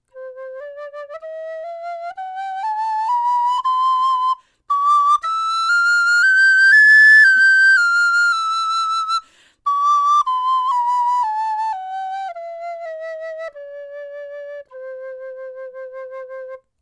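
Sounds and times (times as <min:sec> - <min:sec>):
soprano recorder playing: 0:00.1 - 0:16.6.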